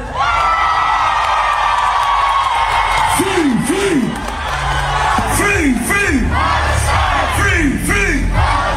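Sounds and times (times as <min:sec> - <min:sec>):
festival crowd cheering: 0:00.1 - 0:08.7
large festival crowd shouting a rhythmic chant: 0:04.6 - 0:08.7.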